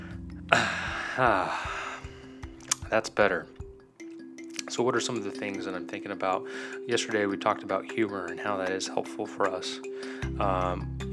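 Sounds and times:
person drawing a deep breath sharply and releasing it: 0.0 - 2.6, 6.4 - 6.9, 9.9 - 10.4
speech: 1.2 - 1.7, 2.9 - 3.6, 4.7 - 11.1.

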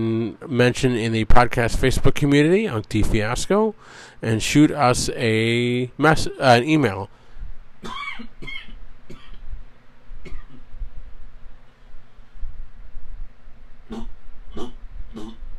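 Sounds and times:
speech: 0.0 - 7.2, 7.8 - 8.6
person coughing: 7.8 - 9.4, 10.2 - 10.6, 13.9 - 15.4.

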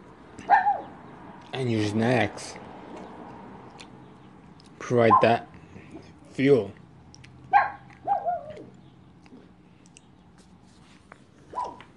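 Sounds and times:
dog barking: 0.4 - 0.9, 5.1 - 5.4, 7.5 - 8.7, 11.5 - 11.9
speech: 1.5 - 2.7, 4.9 - 5.5, 6.4 - 6.8.

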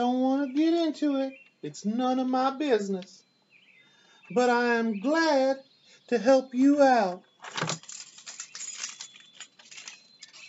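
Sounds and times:
speech: 0.9 - 3.2, 4.3 - 7.7
ring of house keys jangling as it is handed over: 7.4 - 10.4.

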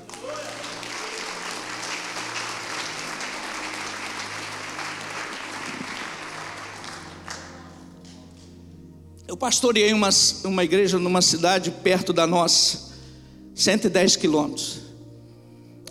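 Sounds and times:
audience applauding: 0.0 - 8.6
speech: 9.3 - 12.9, 13.6 - 14.9.

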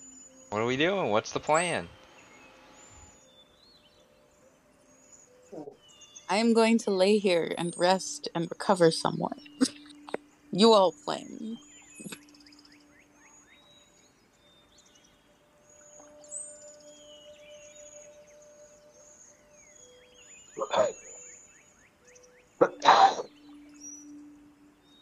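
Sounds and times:
faint high chirping: 0.0 - 25.0
speech: 0.5 - 2.0, 6.3 - 9.7, 10.5 - 11.7
person sneezing: 22.6 - 23.3.

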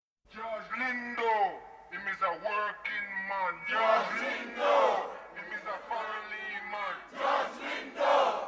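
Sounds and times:
man addressing a crowd: 0.3 - 7.1
large crowd chanting in response to a speaker: 3.7 - 8.4.

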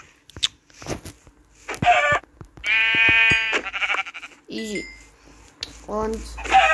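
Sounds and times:
sheep bleating in a video game: 1.8 - 4.4, 6.4 - 6.7
speech: 4.6 - 5.0, 5.9 - 6.5.

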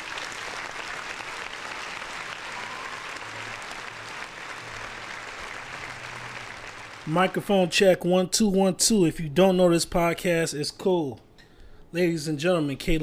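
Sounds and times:
audience applause: 0.0 - 7.4
speech: 7.1 - 11.2, 11.9 - 13.0.

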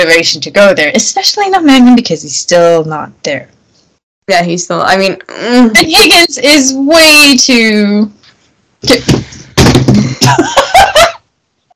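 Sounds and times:
speech: 0.0 - 3.5, 4.3 - 8.2, 8.8 - 9.3, 10.2 - 10.8
thuds and clattering knocks of a person falling off a chair: 8.9 - 10.5
laughter: 10.0 - 11.2.

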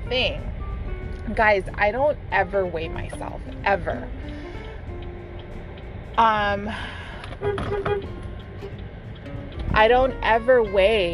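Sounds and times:
steady rumble of traffic and road noise: 0.0 - 11.1
speech: 0.1 - 0.6, 1.2 - 4.4, 6.2 - 8.8, 9.7 - 11.1
short car horn honks: 7.4 - 8.1.

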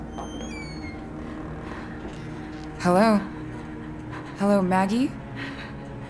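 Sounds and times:
door creaking open with a thin high hinge squeal: 0.0 - 1.5
speech: 2.8 - 3.4, 4.4 - 5.5.

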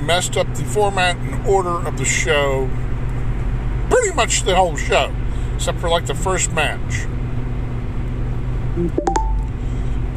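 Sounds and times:
steady low hum: 0.0 - 10.1
speech: 0.1 - 2.9, 4.0 - 7.2, 8.8 - 9.1
electronic notification chirp with short tonal beeps and clicks: 8.8 - 9.5.

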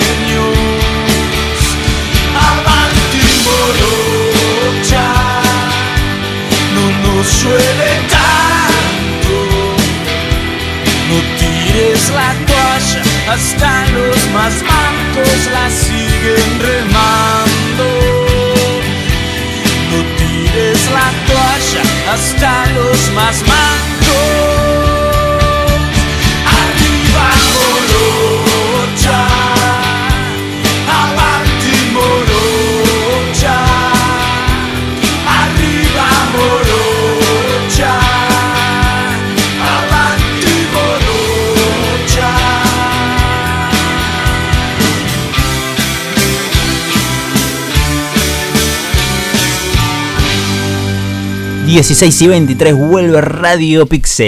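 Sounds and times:
Argentine rock song with drums, guitars and vocal: 0.0 - 54.2
speech: 51.8 - 54.2.

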